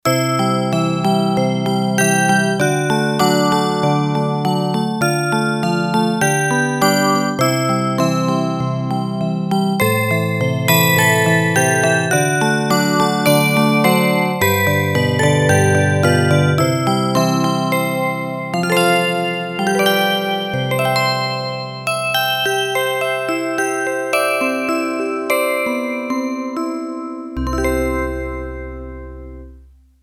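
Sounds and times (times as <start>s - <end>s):
Yamaha TX802 synthesizer piano bells: 0.1s - 29.5s.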